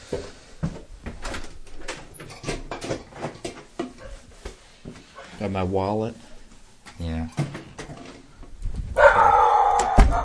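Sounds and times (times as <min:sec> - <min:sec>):
speech: 0:05.4 - 0:06.2, 0:07.0 - 0:07.5
neighbor's dog barking: 0:09.0 - 0:10.2.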